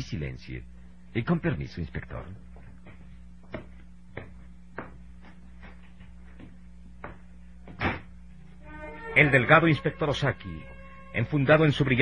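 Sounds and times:
speech: 0:00.0 - 0:02.5, 0:09.2 - 0:12.0
steady low electrical hum: 0:00.0 - 0:12.0
door shutting: 0:07.7 - 0:08.2.

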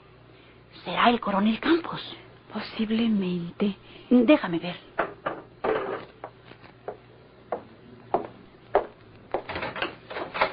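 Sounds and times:
speech: 0:01.0 - 0:04.9
door rattling and thumping as it is opened and shut at night: 0:07.5 - 0:10.5.

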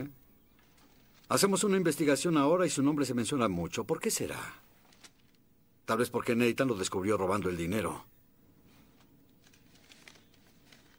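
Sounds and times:
paper pages rustling as papers are leafed through: 0:00.5 - 0:01.5, 0:04.6 - 0:05.5, 0:08.6 - 0:10.9
speech: 0:01.3 - 0:04.7, 0:05.9 - 0:08.1.

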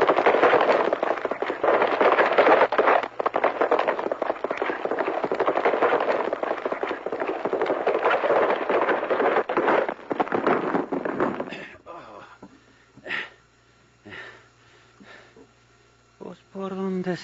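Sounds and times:
horse hooves galloping: 0:00.0 - 0:11.7.

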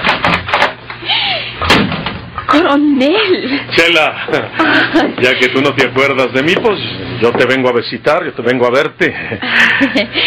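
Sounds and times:
solid door thud: 0:01.6 - 0:02.3
speech: 0:02.7 - 0:10.2.

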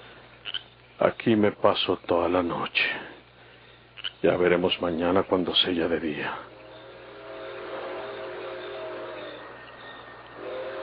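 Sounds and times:
faint sustained tonal hums: 0:00.0 - 0:10.8
speech: 0:01.0 - 0:03.1, 0:04.2 - 0:06.5
approaching train rumbling: 0:05.3 - 0:10.8.

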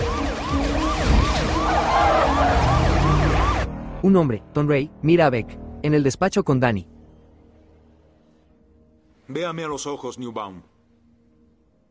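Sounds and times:
emergency siren of a speeding vehicle wailing: 0:00.0 - 0:04.0
steady low engine and road rumble: 0:00.0 - 0:04.0
speech: 0:04.0 - 0:07.0, 0:09.3 - 0:10.7.

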